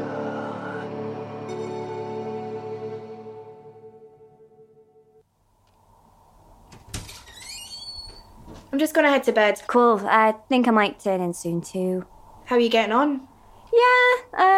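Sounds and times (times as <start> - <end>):
heavy fire door banging shut with a thud: 6.7 - 8.7
heavy fire door swinging open with a tonal whine: 6.9 - 8.3
speech: 8.7 - 14.5.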